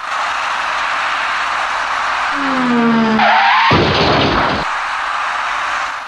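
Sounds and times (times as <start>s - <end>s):
box truck tire screech braking at a night intersection: 0.0s - 6.0s
road noise: 0.0s - 6.0s
white car crashing into a box truck: 3.2s - 6.0s.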